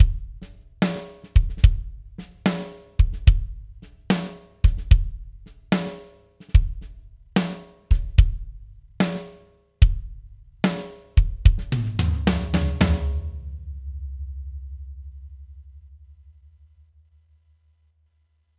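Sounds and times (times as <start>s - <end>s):
kick drum with eq: 0.0s - 0.4s, 1.4s - 2.0s, 3.0s - 3.7s, 4.6s - 5.3s, 6.6s - 6.9s, 7.9s - 8.5s, 9.8s - 10.2s, 11.2s - 11.8s
tom drum with eq: 0.0s - 16.7s
snare drum with eq: 0.8s - 8.3s, 10.7s - 13.5s.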